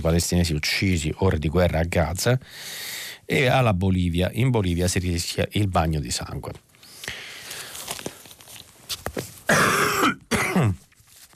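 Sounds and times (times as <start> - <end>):
speech: 0.0 - 6.7
shuffling: 6.4 - 9.5
person clearing throat: 9.5 - 10.8
person coughing: 9.5 - 10.8.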